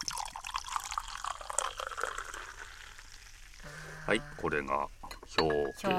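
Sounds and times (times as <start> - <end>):
freshly opened canned chuhi being poured: 0.0 - 3.6
speech: 4.1 - 5.9.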